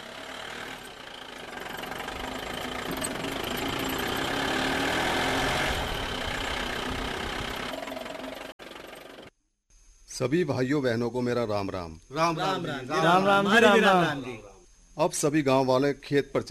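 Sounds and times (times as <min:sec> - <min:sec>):
vehicle engine approaching and idling with rough knocking: 0:00.0 - 0:05.2, 0:05.8 - 0:09.3
speech: 0:10.2 - 0:16.4.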